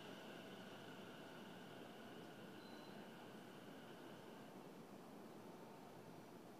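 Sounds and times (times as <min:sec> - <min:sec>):
train electric motor whine: 0:00.0 - 0:04.6
out-of-service train rolling noise departing from station: 0:00.0 - 0:06.5.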